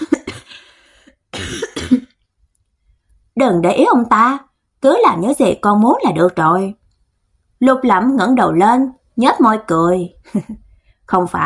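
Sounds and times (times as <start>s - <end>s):
frail elderly woman dry raspy coughing: 0.0s - 0.7s, 1.3s - 2.2s
speech: 1.4s - 2.0s, 3.4s - 6.8s, 7.6s - 11.4s.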